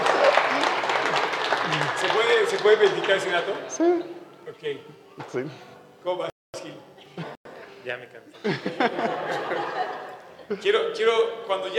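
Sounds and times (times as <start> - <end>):
applause from a group: 0.0 - 3.6
speech: 2.4 - 6.8, 7.8 - 11.7
laughter: 8.4 - 10.8.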